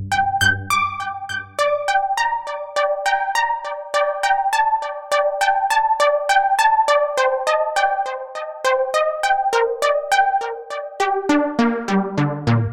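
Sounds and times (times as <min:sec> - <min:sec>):
synth textures with delay: 0:00.1 - 0:12.5.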